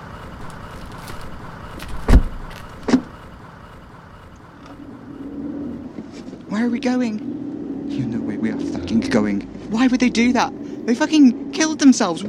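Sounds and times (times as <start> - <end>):
car engine humming as the vehicle starts moving: 0.0 - 12.2
low rumble: 0.0 - 12.2
car door thuds: 1.9 - 3.0
speech: 6.6 - 7.3, 8.0 - 12.2.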